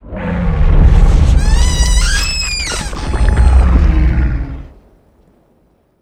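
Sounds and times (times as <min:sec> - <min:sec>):
squeezing squelch: 0:01.4 - 0:04.3.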